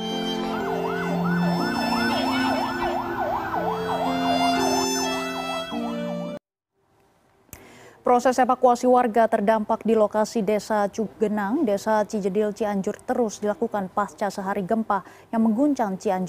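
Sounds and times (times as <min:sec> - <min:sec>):
ambulance siren wailing: 0:00.0 - 0:06.4
speech: 0:08.1 - 0:16.2.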